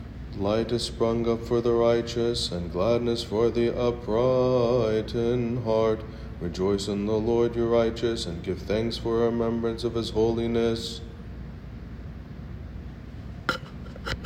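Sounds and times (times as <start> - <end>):
psalm chanting at matins: 0.3 - 11.2.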